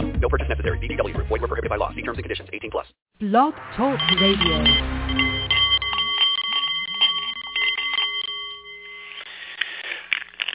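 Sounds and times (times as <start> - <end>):
speech: 0.2 - 4.9
Nepalese meditation bowl chiming: 3.6 - 9.6.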